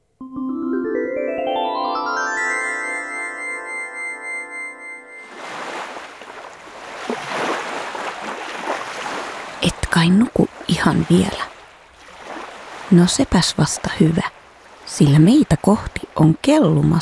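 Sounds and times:
bright rising tonal chime: 0:00.2 - 0:05.7
water rushing and splashing from a boat moving on the sea by the shore: 0:05.2 - 0:17.0
speech: 0:10.0 - 0:11.5, 0:12.9 - 0:17.0.

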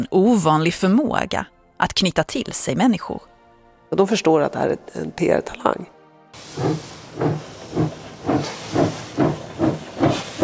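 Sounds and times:
speech: 0:00.0 - 0:03.3, 0:03.9 - 0:09.0
steam locomotive chuffing as its train pulls away from a station platform in Zürich: 0:06.4 - 0:10.4.

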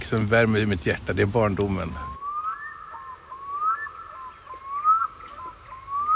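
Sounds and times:
speech: 0:00.1 - 0:02.1
black-throated loon wailing across open water: 0:02.2 - 0:06.1.

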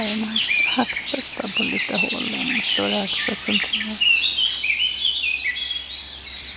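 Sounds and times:
speech: 0:00.0 - 0:04.1
blackcap singing in a forest: 0:00.0 - 0:06.5.

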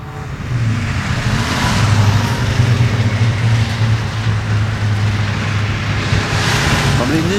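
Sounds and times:
dense highway traffic with cars passing: 0:00.0 - 0:07.3.

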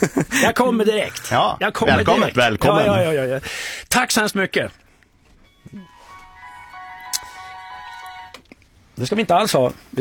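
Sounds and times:
speech: 0:00.0 - 0:04.8, 0:05.7 - 0:05.9, 0:09.0 - 0:09.9
short electronic traffic report jingle of wavering siren-like tones: 0:05.5 - 0:08.4.

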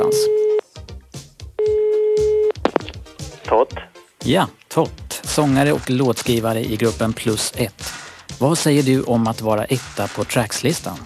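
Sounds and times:
telephone dialing beeps: 0:00.0 - 0:00.6, 0:01.6 - 0:02.8
telephone tone: 0:00.0 - 0:00.7, 0:01.6 - 0:02.8
speech: 0:04.3 - 0:11.0.

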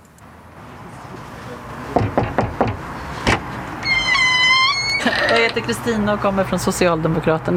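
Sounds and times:
quick knocks on a door: 0:02.0 - 0:03.4
front door opening with a sharp clack: 0:02.0 - 0:06.0
speech: 0:05.0 - 0:07.5.

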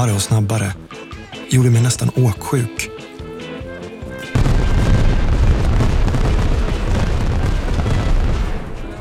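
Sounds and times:
speech: 0:00.0 - 0:03.0
fireworks exploding with deep booms: 0:04.3 - 0:08.8.

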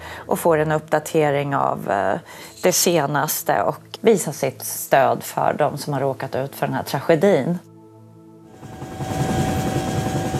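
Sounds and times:
speech: 0:00.3 - 0:07.7
helicopter rotor chopping over engine roar: 0:08.5 - 0:10.3.

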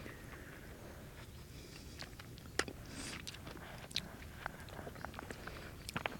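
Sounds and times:
quiet outdoor background: 0:00.0 - 0:06.1
wet chewing and smacking of a mouthful of sea buckthorn berries: 0:01.7 - 0:06.1.

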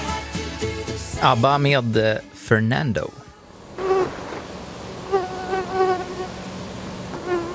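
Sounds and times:
speech: 0:01.2 - 0:03.2
mosquito buzzing: 0:03.8 - 0:04.4, 0:05.0 - 0:07.5.

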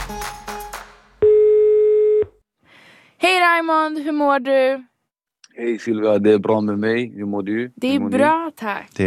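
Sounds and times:
phone line electronic ringing tone: 0:01.2 - 0:02.3
speech: 0:03.7 - 0:04.9, 0:05.6 - 0:09.0.

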